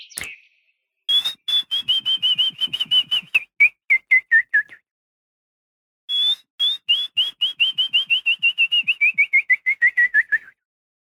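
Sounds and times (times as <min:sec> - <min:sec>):
person whistling an imitation of willow warbler song: 0:01.1 - 0:04.8, 0:06.1 - 0:10.6.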